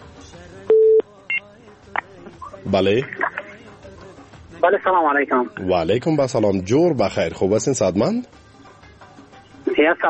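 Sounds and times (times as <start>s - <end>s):
faint noise: 0.0s - 10.0s
telephone tones as a caller's line connects: 0.7s - 1.0s
speech: 2.7s - 3.3s, 4.6s - 8.4s, 9.8s - 10.0s.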